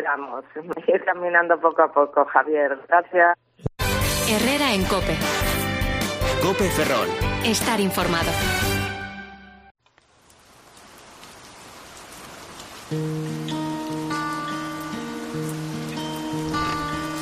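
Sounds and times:
speech: 0.0 - 3.7, 4.3 - 5.6, 6.2 - 8.7
steady rain: 9.8 - 17.2.

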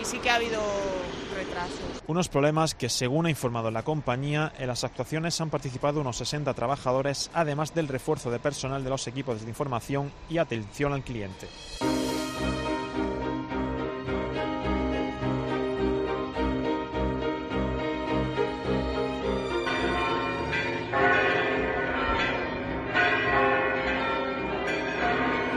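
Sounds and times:
speech: 0.1 - 12.1
cathedral church bells pealing: 11.8 - 25.5.

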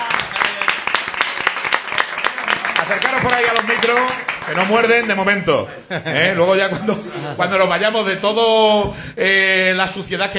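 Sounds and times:
audience applause for arriving guest: 0.0 - 5.3
speech: 2.9 - 10.3
laughter: 5.6 - 7.8.

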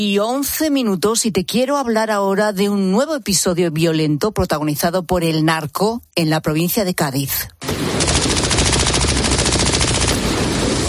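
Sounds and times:
speech: 0.0 - 8.4
rapid automatic fire from a military weapon during a night clash: 7.6 - 10.6.

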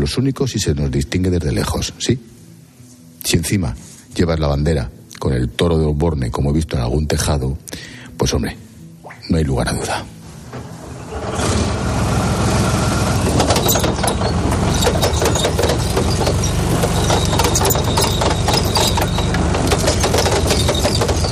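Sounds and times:
speech: 0.0 - 2.4, 3.2 - 8.7, 9.3 - 10.2
Spanish army Leopard battle tank moving with loud continuous roar: 11.0 - 21.2
metallic clanking and rattling of Leopard battle tank: 12.6 - 21.2.

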